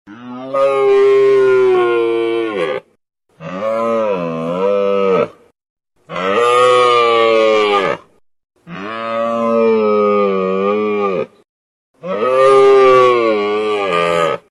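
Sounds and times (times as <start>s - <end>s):
funny cow sound: 0.1s - 11.4s, 12.0s - 14.4s.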